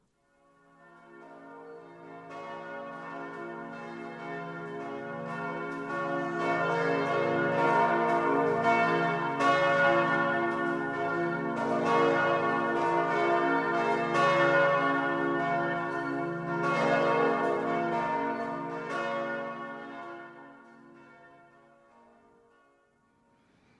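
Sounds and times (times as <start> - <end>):
church bells pealing before mass: 0.4 - 23.0.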